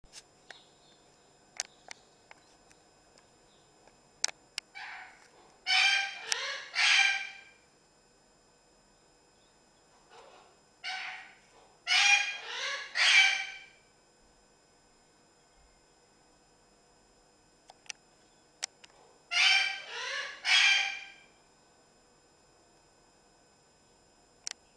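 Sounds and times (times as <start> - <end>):
parrot squawks: 4.8 - 7.6, 10.8 - 13.8, 19.3 - 21.3.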